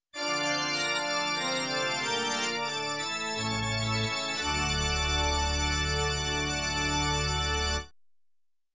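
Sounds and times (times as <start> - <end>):
organ ending in a major key: 0.2 - 7.9.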